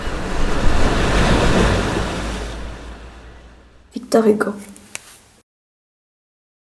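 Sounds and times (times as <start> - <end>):
ocean surf of breaking waves: 0.0 - 4.4
wind over ocean surf: 0.0 - 4.4
speech: 4.2 - 4.7.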